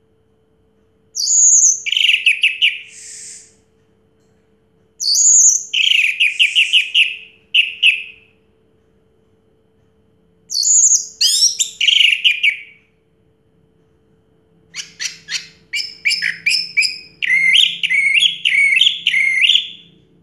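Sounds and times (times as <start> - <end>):
Orange-headed thrush singing: 1.2 - 3.6, 5.0 - 8.2, 10.5 - 12.8, 14.8 - 19.9.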